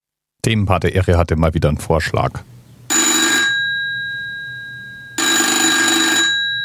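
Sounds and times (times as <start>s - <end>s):
speech: 0.4s - 2.6s
FeTAp 611 telephone bell ringing: 2.9s - 6.6s.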